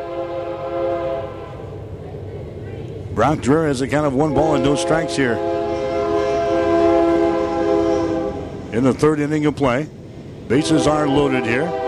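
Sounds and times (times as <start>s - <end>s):
passing train's horn blaring: 0.0s - 1.8s, 4.2s - 8.6s, 10.5s - 11.8s
low rumbling of the train: 0.0s - 11.8s
speech: 3.2s - 5.6s, 8.7s - 11.8s.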